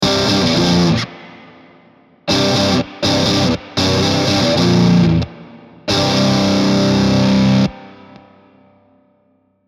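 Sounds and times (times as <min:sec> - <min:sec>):
doubled metal guitar riff through amp simulation: 0:00.0 - 0:01.7, 0:02.3 - 0:08.2.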